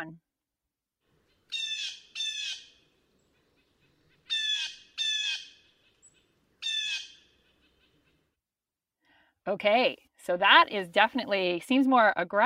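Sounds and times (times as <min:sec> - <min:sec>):
blue jay calls: 0:01.2 - 0:08.3
speech: 0:09.5 - 0:12.4.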